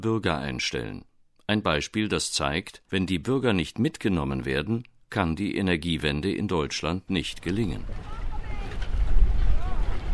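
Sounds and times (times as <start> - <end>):
speech: 0.0 - 8.2
water at a small harbour rumbling: 7.2 - 10.1
gusting wind noise across the microphone at a small harbour: 7.8 - 10.1.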